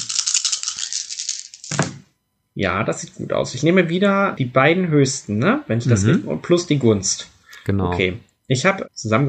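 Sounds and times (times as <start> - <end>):
dice tumbling and clattering: 0.0 - 1.9
speech: 2.6 - 9.2.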